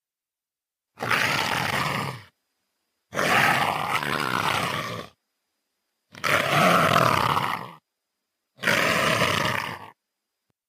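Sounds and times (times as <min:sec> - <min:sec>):
leopard hissing and snarling: 0:01.0 - 0:02.3, 0:03.1 - 0:05.2, 0:06.1 - 0:07.8, 0:08.6 - 0:10.0.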